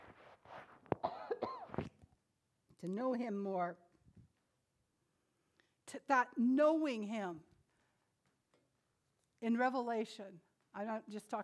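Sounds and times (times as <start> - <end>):
preacher coughing harshly: 1.0 - 1.8
speech: 2.8 - 3.8, 6.1 - 7.5, 9.4 - 11.4.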